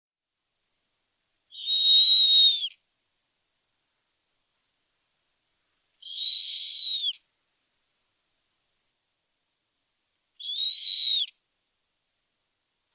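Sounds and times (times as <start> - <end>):
captive snowy owl giving high whistled screams at a zoo in Pessac, France: 1.5 - 2.8, 6.0 - 7.2, 10.4 - 11.4.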